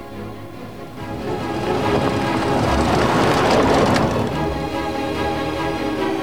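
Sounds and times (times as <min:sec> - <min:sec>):
car driving up a dry dusty dirt track: 0:00.4 - 0:06.0.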